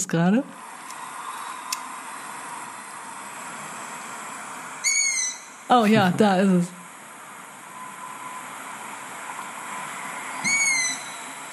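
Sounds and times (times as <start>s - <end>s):
speech: 0.1s - 0.6s, 5.7s - 6.8s
long-eared owl chick begging call: 4.8s - 5.6s, 10.4s - 11.3s.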